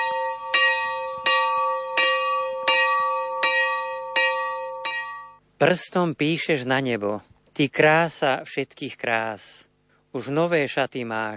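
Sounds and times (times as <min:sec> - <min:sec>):
small chapel bell ringing: 0:00.0 - 0:05.4
speech: 0:05.6 - 0:11.3.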